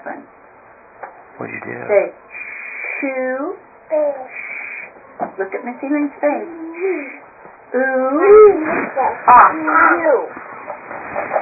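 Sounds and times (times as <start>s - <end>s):
speech: 1.4s - 2.4s, 3.0s - 4.4s, 5.4s - 10.4s
child imitating an angry cat with a harsh squawking cry: 3.9s - 4.9s.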